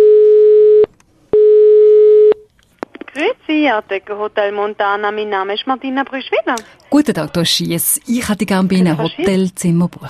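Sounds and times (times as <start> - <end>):
telephone busy signal while calling a hotel in Lucerne: 0.0 - 2.4
speech: 3.5 - 10.0.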